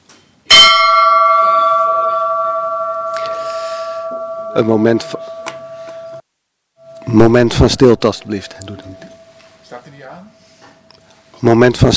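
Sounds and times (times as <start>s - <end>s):
bell ringing: 0.5s - 6.2s, 6.8s - 9.8s
speech: 4.6s - 5.3s, 7.1s - 9.0s, 9.9s - 10.4s, 11.4s - 11.9s.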